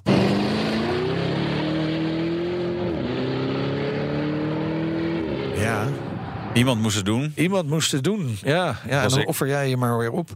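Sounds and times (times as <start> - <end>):
Lamborghini Urus SUV engine revving while accelerating through gear shifts: 0.0 - 6.6
speech: 6.6 - 10.3.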